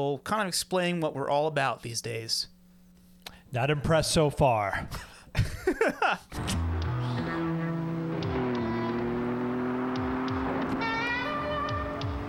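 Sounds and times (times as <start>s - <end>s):
speech: 0.0s - 2.6s, 3.5s - 6.6s
laughter: 5.4s - 6.3s
car driven fast droning at speed: 6.4s - 12.2s.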